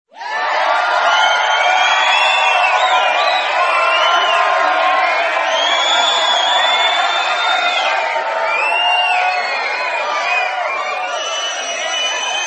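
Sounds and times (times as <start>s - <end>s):
crowd cheering: 0.1s - 12.4s.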